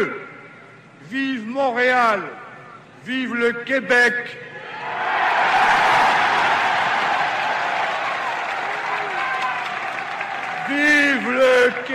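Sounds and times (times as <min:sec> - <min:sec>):
speech: 0:01.1 - 0:02.4, 0:03.0 - 0:05.1, 0:10.7 - 0:11.9
large crowd applauding after a political speech in Montreal: 0:05.3 - 0:11.9.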